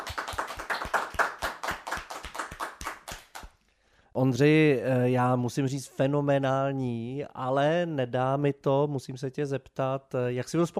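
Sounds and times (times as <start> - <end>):
applause after a live performance: 0.0 - 3.6
speech: 4.2 - 10.7.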